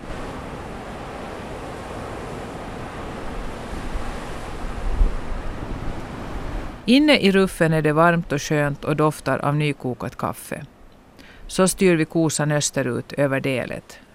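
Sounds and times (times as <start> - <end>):
fresh westerly wind roaring at sea: 0.0 - 6.9
waves washing and splashing at sea: 0.0 - 14.1
speech: 6.9 - 10.7, 11.5 - 14.0.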